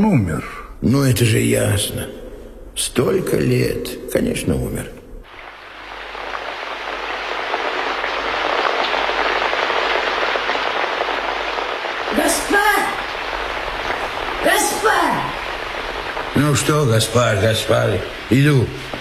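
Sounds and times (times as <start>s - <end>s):
speech: 0.0s - 2.2s, 2.8s - 5.0s, 16.4s - 18.9s
heavy rain pouring: 5.2s - 18.9s.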